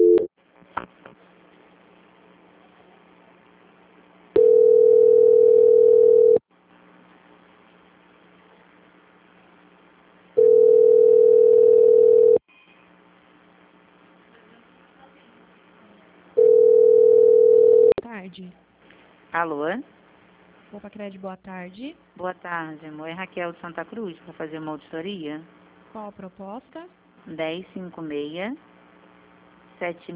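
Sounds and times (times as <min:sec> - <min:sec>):
telephone line tone while a call is being transferred: 0:00.0 - 0:00.3, 0:04.4 - 0:06.4, 0:10.4 - 0:12.4, 0:16.4 - 0:18.0
speech: 0:19.4 - 0:19.9, 0:20.8 - 0:28.7, 0:29.8 - 0:30.1.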